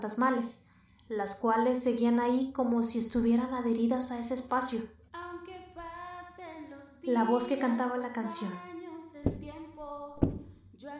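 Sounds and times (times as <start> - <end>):
speech: 0.0 - 5.0, 7.1 - 9.4
heavy dull knocks on a bathroom door: 9.3 - 9.5, 10.2 - 10.5.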